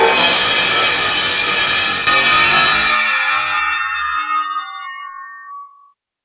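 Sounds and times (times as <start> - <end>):
drums: 0.0 - 4.2
cymbal: 0.0 - 5.1.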